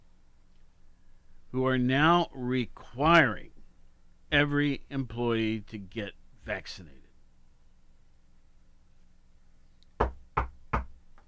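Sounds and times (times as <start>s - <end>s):
speech: 1.5s - 3.5s, 4.3s - 7.0s
knocking on wood: 10.0s - 11.0s.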